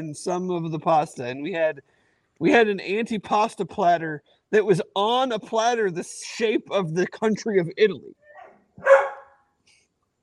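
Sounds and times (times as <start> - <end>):
speech: 0.0 - 8.2, 8.8 - 9.1
dog barking: 8.3 - 9.4.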